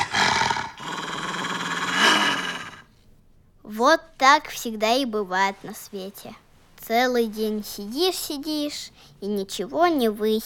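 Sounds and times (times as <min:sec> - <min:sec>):
dog growling and snarling: 0:00.0 - 0:02.9
speech: 0:03.7 - 0:10.4.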